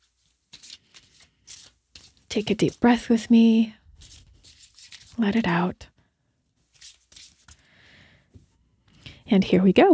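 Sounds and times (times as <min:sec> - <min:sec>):
deck of cards being shuffled: 0:00.0 - 0:03.2, 0:04.0 - 0:05.2, 0:06.6 - 0:07.7
speech: 0:02.4 - 0:03.8, 0:05.2 - 0:05.9, 0:09.3 - 0:09.9.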